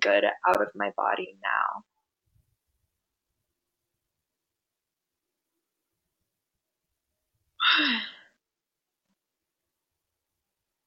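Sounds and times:
speech: 0.0s - 1.9s, 7.6s - 8.2s
breathy yawn: 7.6s - 8.4s.

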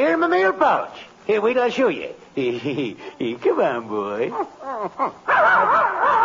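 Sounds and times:
speech: 0.0s - 6.2s
puppy yipping: 4.3s - 6.2s.

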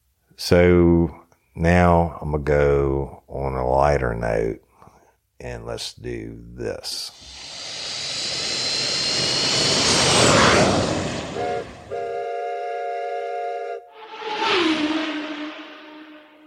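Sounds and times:
speech: 0.4s - 4.7s, 5.4s - 7.6s
loud airplane jet engine roar: 7.1s - 12.2s, 13.9s - 16.3s
steady horn-like chord: 10.8s - 14.2s, 14.9s - 16.4s.

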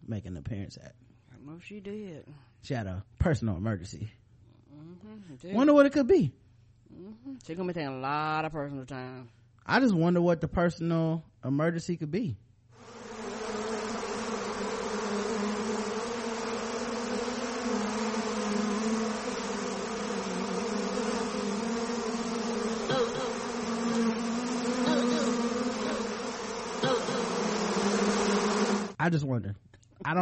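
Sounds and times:
speech: 0.1s - 12.4s, 29.0s - 30.1s
many bees buzzing: 12.8s - 29.0s.

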